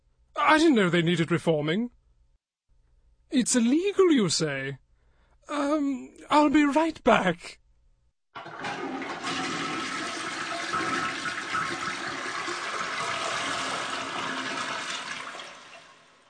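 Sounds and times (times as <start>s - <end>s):
speech: 0.5s - 2.0s, 3.3s - 4.8s, 5.5s - 7.6s, 8.4s - 9.0s
toilet flushing: 8.4s - 16.2s.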